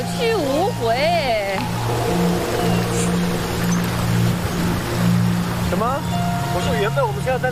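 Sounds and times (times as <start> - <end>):
strong wind: 0.8 - 6.4
speech: 5.7 - 7.4.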